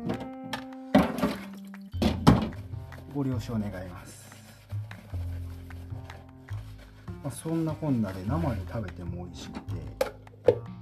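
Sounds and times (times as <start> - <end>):
dishes clattering in a sink: 0.0 - 2.6
running water from washing dishes: 1.0 - 2.7
speech: 3.1 - 4.2, 7.2 - 10.1.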